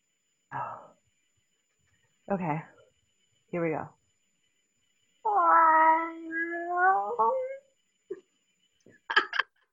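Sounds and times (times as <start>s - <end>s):
speech: 2.3s - 2.7s, 3.5s - 4.0s
person imitating a cat's meow: 5.3s - 7.6s.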